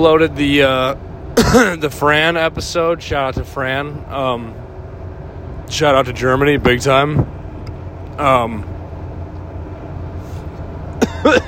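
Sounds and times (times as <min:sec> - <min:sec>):
speech: 0:00.0 - 0:04.6, 0:05.7 - 0:07.3, 0:08.2 - 0:08.7, 0:11.2 - 0:11.4
person clearing throat: 0:01.4 - 0:01.8, 0:11.0 - 0:11.4
person coughing: 0:01.4 - 0:01.8, 0:11.0 - 0:11.4.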